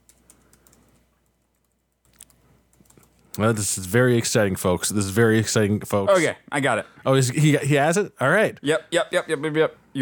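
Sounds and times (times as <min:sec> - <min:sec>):
man typing quickly on a computer keyboard: 0:00.0 - 0:03.2
speech: 0:03.4 - 0:10.0.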